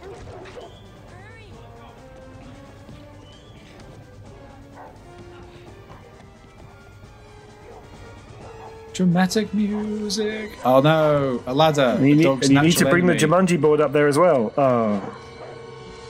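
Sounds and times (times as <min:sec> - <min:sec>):
vicious dogs barking and snarling in an attack: 0:00.0 - 0:00.9, 0:04.3 - 0:11.0, 0:14.8 - 0:16.0
speech: 0:09.0 - 0:15.2.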